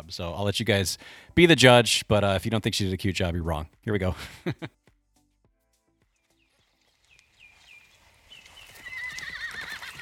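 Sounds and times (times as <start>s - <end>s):
speech: 0.1s - 4.8s
horse hooves clip-clopping: 6.0s - 10.0s
horse whinnying: 8.6s - 10.0s.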